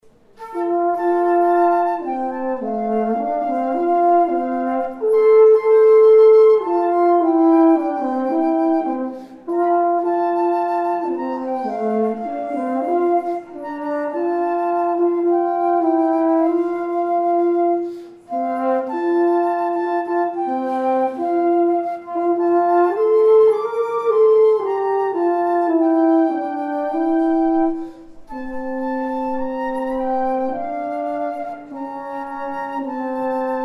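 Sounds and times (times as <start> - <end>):
flute and horn duet of an African American spiritual: 0.1 - 33.6.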